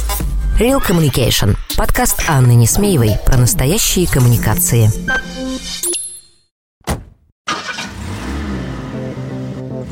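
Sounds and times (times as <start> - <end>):
speech: 0.6 - 5.9
car engine cranking, starting and revving: 7.5 - 9.8.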